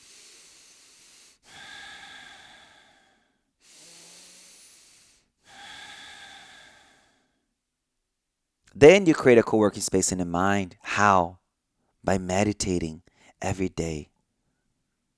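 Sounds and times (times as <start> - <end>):
long airy deep breaths: 0.0 - 7.5, 13.1 - 13.4
speech: 8.7 - 11.4, 12.0 - 14.1.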